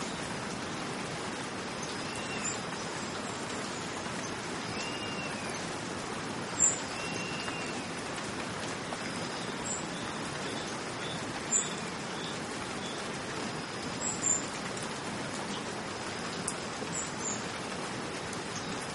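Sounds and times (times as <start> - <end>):
steady rain falling: 0.0 - 18.9.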